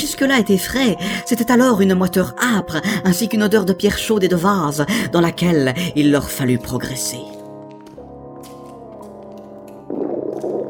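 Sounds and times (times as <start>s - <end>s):
speech: 0.0s - 7.4s
hungry stomach gurgling: 9.7s - 10.6s.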